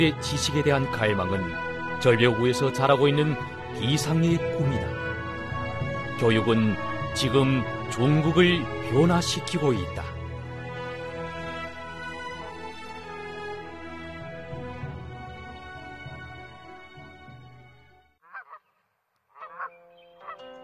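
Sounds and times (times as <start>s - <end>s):
speech: 0.0s - 4.9s, 6.2s - 10.1s
geese honking: 18.2s - 18.7s, 19.4s - 20.4s.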